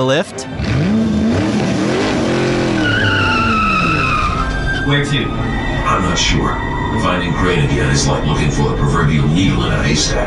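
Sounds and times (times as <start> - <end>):
speech: 0.0 - 1.0, 4.8 - 10.2
specialized roadster engine: 0.5 - 10.2
specialized roadster tires screeching while pulling up: 0.6 - 10.2
high whining tones: 2.1 - 10.2.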